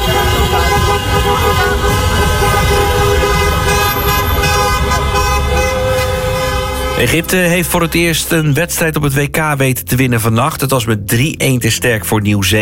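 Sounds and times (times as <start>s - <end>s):
car horns honking from celebrating football fans driving around city streets: 0.0s - 8.9s
steady engine and traffic noise in city streets: 0.0s - 11.2s
speech: 7.0s - 12.6s.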